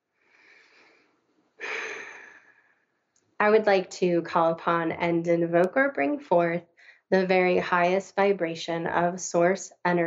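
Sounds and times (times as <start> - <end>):
slow deep breath in and out during a relaxation exercise: 0.2 - 2.8
speech: 3.4 - 10.0.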